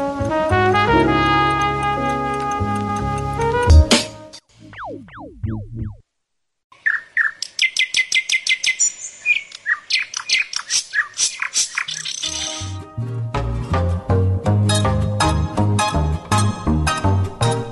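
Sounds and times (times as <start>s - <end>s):
rhythmic instrumental backing with deep bass: 0.1s - 6.0s, 12.7s - 17.6s
birds singing: 6.8s - 12.8s.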